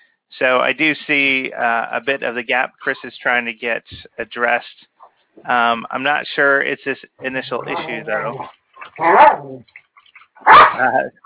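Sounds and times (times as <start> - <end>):
speech: 0.4 - 9.8, 10.4 - 11.2
dog barking: 9.0 - 9.5, 10.4 - 11.0.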